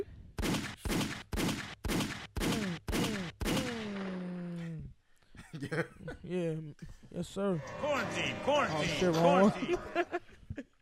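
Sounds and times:
gunshot sound effects: 0:00.4 - 0:04.3
laughter: 0:05.4 - 0:06.3, 0:07.6 - 0:10.8
speech: 0:05.6 - 0:10.3.

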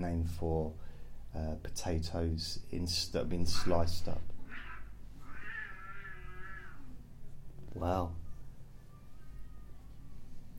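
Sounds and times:
speech: 0:00.0 - 0:04.4, 0:07.7 - 0:08.2
cats fighting and caterwauling outdoors: 0:03.5 - 0:07.1, 0:08.7 - 0:10.1.

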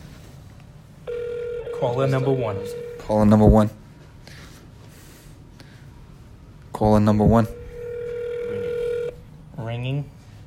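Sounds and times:
electronic telephone ringback tone on a call: 0:01.1 - 0:03.3, 0:07.4 - 0:09.2
speech: 0:01.8 - 0:03.8, 0:06.8 - 0:07.6, 0:09.8 - 0:10.2.

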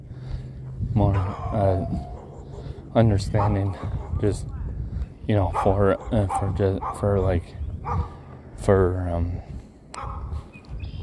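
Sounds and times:
speech: 0:01.0 - 0:02.1, 0:02.9 - 0:04.6, 0:05.3 - 0:09.6
dog barking and yipping: 0:01.1 - 0:04.2, 0:05.5 - 0:07.1, 0:07.8 - 0:08.2, 0:10.0 - 0:10.4.

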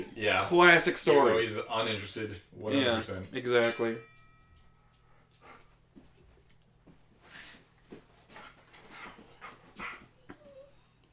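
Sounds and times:
low steady hum: 0:00.0 - 0:11.1
speech: 0:00.2 - 0:04.1
dog panting with rapid breathy huffs: 0:05.1 - 0:05.9, 0:07.3 - 0:11.1
dog whimpering with high thin whines: 0:09.2 - 0:11.1.

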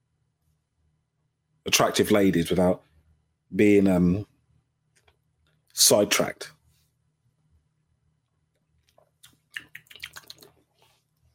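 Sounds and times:
speech: 0:01.6 - 0:02.9, 0:03.5 - 0:04.3, 0:05.8 - 0:06.6
person drinking water, swallowing and slurping: 0:09.0 - 0:10.7.

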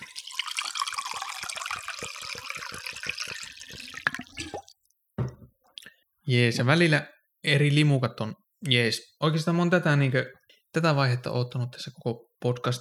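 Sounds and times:
water pouring from a jug into a glass: 0:00.0 - 0:04.8
speech: 0:06.3 - 0:12.7.

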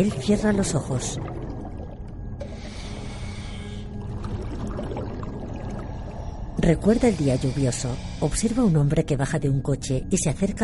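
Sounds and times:
speech: 0:00.0 - 0:01.4, 0:06.6 - 0:10.6
bubbles rising from a breathing apparatus in a water tank: 0:00.0 - 0:03.2, 0:03.9 - 0:06.5.

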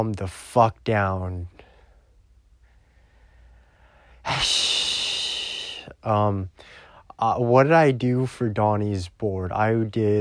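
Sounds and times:
speech: 0:00.0 - 0:01.6, 0:04.2 - 0:04.9, 0:06.0 - 0:10.2
person breathing deeply: 0:01.6 - 0:07.1.

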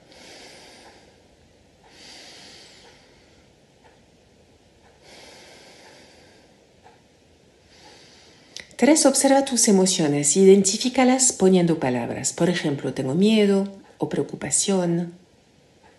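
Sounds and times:
slow calm breathing through the nose as an exercise to calm an anxiety attack: 0:00.0 - 0:03.6, 0:04.8 - 0:06.7, 0:07.6 - 0:08.6
speech: 0:08.8 - 0:15.2.

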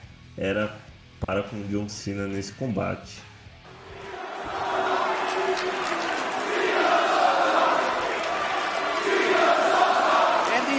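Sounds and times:
speech: 0:00.4 - 0:03.3
hostile wrestling arena crowd roaring and chanting in unison: 0:03.7 - 0:10.7.

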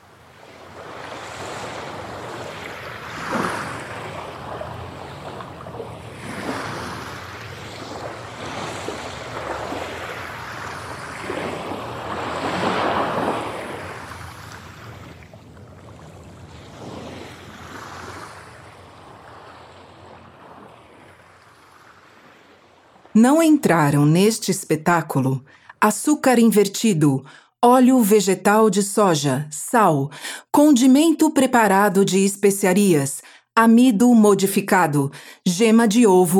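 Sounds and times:
ocean waves breaking: 0:00.0 - 0:25.8
speech: 0:23.2 - 0:36.3.

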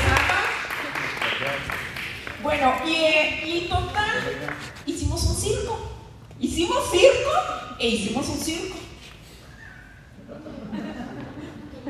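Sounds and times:
crowd applause welcoming arriving guests: 0:00.0 - 0:02.6
speech: 0:02.4 - 0:08.8
laughter: 0:10.2 - 0:11.8.

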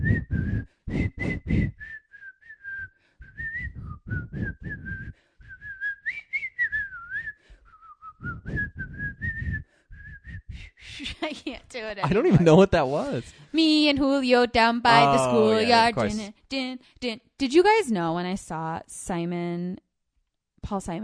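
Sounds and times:
woman whistling a wavering melody: 0:00.0 - 0:11.0
speech: 0:11.2 - 0:19.8, 0:20.6 - 0:21.0.

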